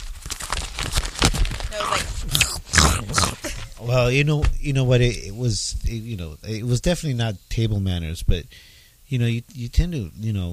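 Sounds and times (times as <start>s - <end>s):
person munching crunchy onion-flavored snack chips: 0.0s - 3.6s
speech: 3.8s - 10.5s.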